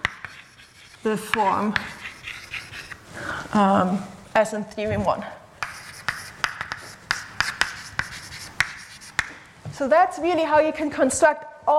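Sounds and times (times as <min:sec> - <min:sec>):
writing on a board during a mathematics lecture: 0:00.0 - 0:03.0, 0:05.6 - 0:09.4
speech: 0:01.0 - 0:02.0, 0:03.5 - 0:05.4, 0:09.8 - 0:11.7.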